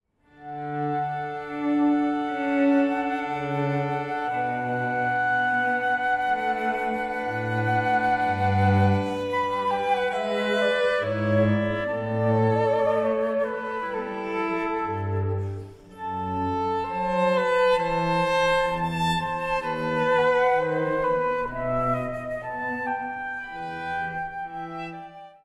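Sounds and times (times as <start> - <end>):
flute violin and cello trio playing: 0.3 - 25.4.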